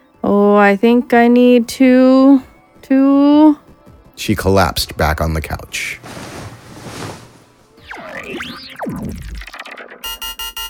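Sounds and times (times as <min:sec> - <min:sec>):
speech: 0:00.5 - 0:03.6, 0:04.2 - 0:06.3
rapid electronic alarm beeping: 0:07.9 - 0:10.6.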